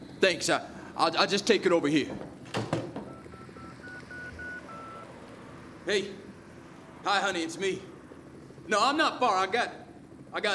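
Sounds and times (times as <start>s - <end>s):
speech: 0.2s - 2.3s, 5.9s - 6.2s, 7.0s - 7.9s, 8.7s - 10.5s
telephone touch-tone dialing beeps: 3.0s - 5.1s.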